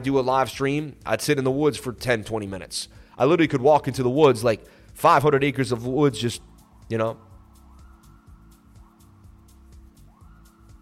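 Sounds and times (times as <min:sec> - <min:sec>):
speech: 0:00.0 - 0:07.3
emergency vehicle siren wailing in rising sweeps: 0:07.0 - 0:10.8.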